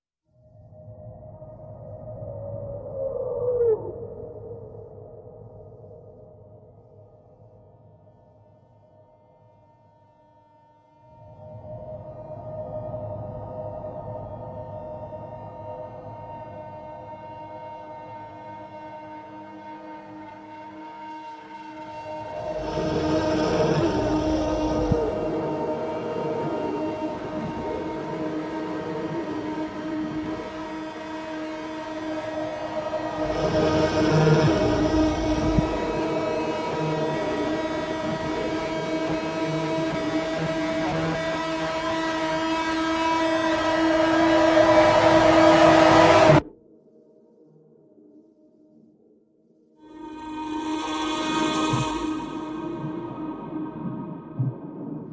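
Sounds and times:
synth pads: 0:18.6 - 0:46.5, 0:49.9 - 0:55.1
vocals: 0:22.1 - 0:42.7, 0:49.8 - 0:55.1
sound effects: 0:49.9 - 0:54.0.

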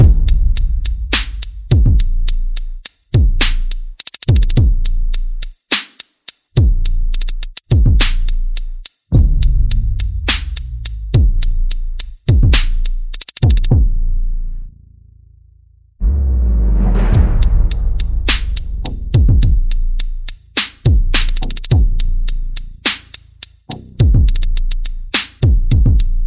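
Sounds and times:
bass: 0:00.0 - 0:05.7, 0:06.6 - 0:26.2
percussion: 0:00.0 - 0:14.1, 0:16.0 - 0:26.2
sound effects: 0:16.0 - 0:19.2.

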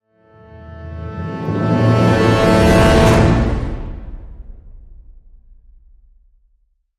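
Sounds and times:
orchestral brass hit: 0:00.3 - 0:05.1.

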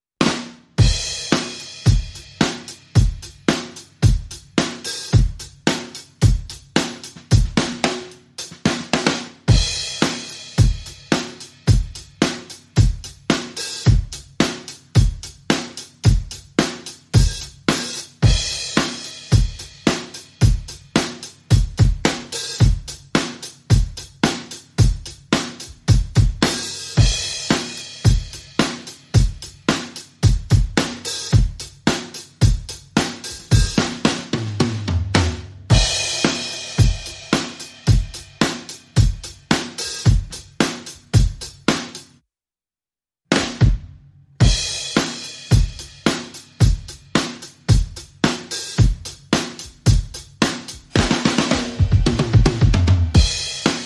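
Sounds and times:
drums: 0:00.0 - 0:42.2, 0:43.2 - 0:53.8.

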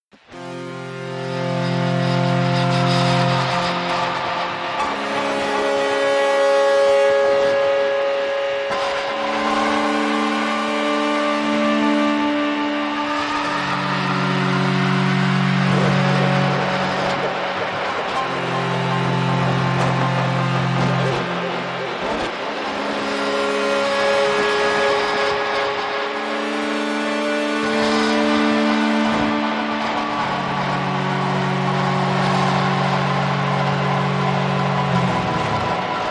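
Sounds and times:
ambient guitar: 0:00.2 - 0:36.0.

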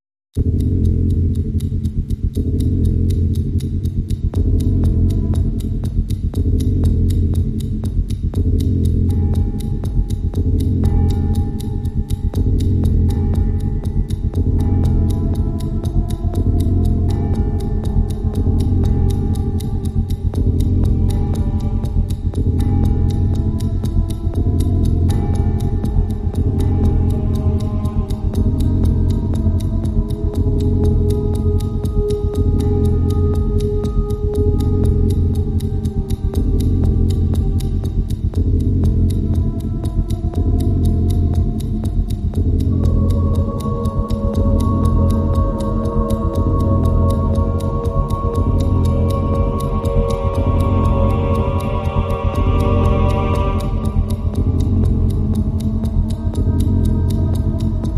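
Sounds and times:
dark ticking drone: 0:00.3 - 0:57.9.

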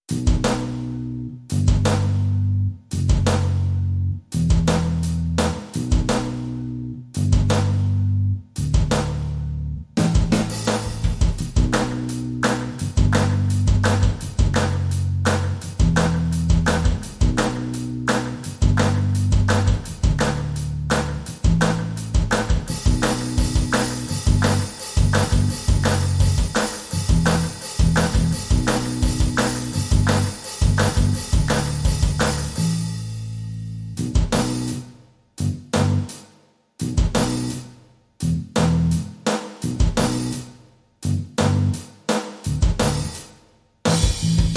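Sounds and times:
bass: 0:00.0 - 0:36.2, 0:36.8 - 0:44.5
drums: 0:00.0 - 0:44.5
clap: 0:11.8 - 0:32.6, 0:35.8 - 0:36.3.

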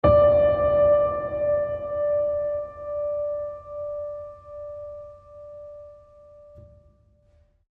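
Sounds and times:
tranquil mid piano ping: 0:00.0 - 0:07.4.

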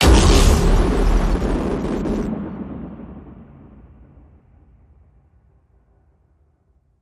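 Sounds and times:
horror hit repellent noise: 0:00.0 - 0:04.5.

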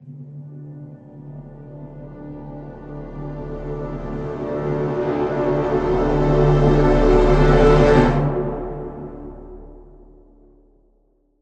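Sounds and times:
epic tape orchestra crescendo: 0:01.6 - 0:10.0.

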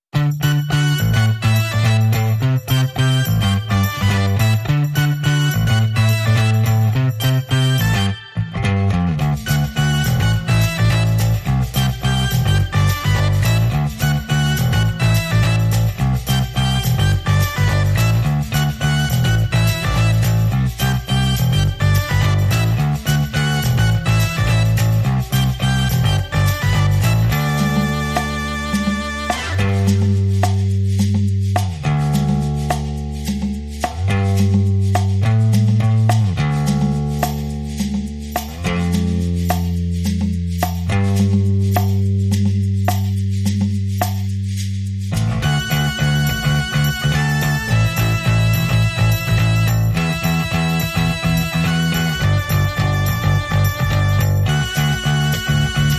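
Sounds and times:
bass: 0:00.0 - 0:55.9
shaker: 0:00.2 - 0:08.1, 0:09.2 - 0:55.9
organ lead: 0:00.2 - 0:31.0, 0:45.2 - 0:55.9.

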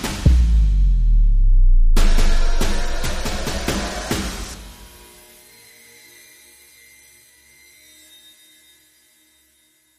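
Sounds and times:
dramatic percussion sting: 0:00.3 - 0:05.3.

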